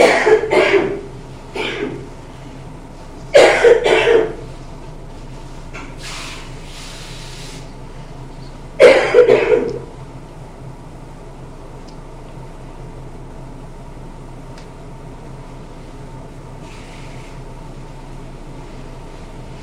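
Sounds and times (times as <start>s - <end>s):
harsh coughing: 0.0s - 2.1s, 3.3s - 4.4s, 8.8s - 9.9s
quiet hum: 0.0s - 19.6s.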